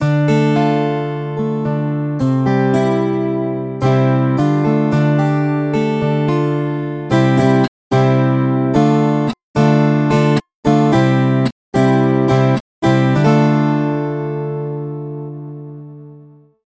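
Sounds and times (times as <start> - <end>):
Viola Caipira 10-string guitar: 0.0 - 16.6.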